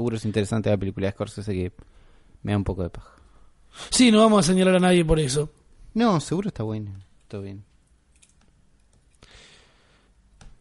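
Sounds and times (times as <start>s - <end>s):
speech: 0.0s - 7.7s
computer mouse clicks: 8.1s - 9.2s, 10.3s - 10.5s.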